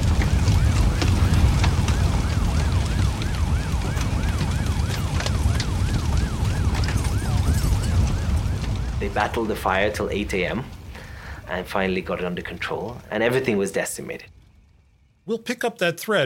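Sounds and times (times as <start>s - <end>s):
fire engine and police sirens at a factory fire: 0.0s - 11.1s
speech: 9.2s - 10.8s, 11.5s - 14.4s, 15.2s - 16.2s.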